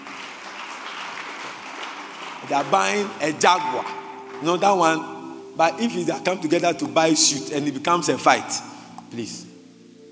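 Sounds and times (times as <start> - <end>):
audience clapping: 0.0 - 4.9
speech: 2.4 - 9.5.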